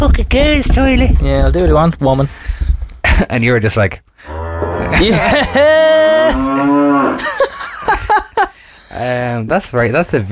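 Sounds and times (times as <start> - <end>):
speech: 0.0 - 2.5, 3.2 - 7.3, 9.0 - 10.3
cow mooing indoors in a barn: 4.2 - 5.2, 6.1 - 7.3
cow short grunting calls: 4.2 - 7.4
laughter: 4.8 - 8.6.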